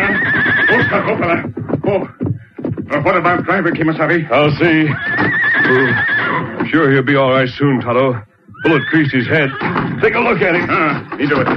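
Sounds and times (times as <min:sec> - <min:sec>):
stagecoach lead horses whinnying as the coach is brought to a halt: 0:00.0 - 0:01.5, 0:04.7 - 0:06.7, 0:08.5 - 0:11.5
speech: 0:00.9 - 0:02.2, 0:02.9 - 0:11.5.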